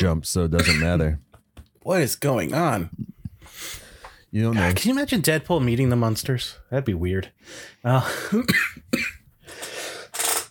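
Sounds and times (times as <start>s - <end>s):
speech: 0.0s - 9.6s
person coughing: 0.6s - 1.0s, 8.1s - 9.2s
raspy throat-clearing coughs: 0.6s - 1.1s, 8.2s - 9.2s.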